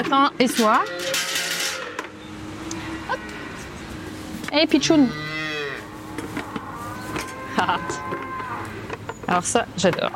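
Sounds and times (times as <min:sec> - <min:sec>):
speech: 0:00.0 - 0:01.2, 0:04.5 - 0:05.2, 0:07.6 - 0:08.3, 0:09.3 - 0:10.1
low noise: 0:00.0 - 0:10.1
calves mooing on a dairy farm: 0:00.3 - 0:02.1, 0:02.7 - 0:03.8, 0:04.7 - 0:09.0.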